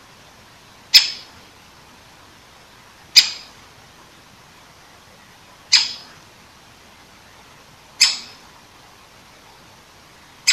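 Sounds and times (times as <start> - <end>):
Great Spotted Woodpecker giving loud abrupt kick calls: 0.9 - 1.3, 3.2 - 3.6, 5.7 - 6.2, 8.0 - 8.4.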